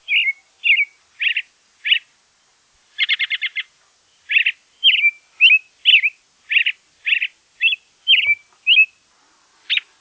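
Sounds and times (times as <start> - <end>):
bird: 0.0 - 2.1, 3.0 - 9.9.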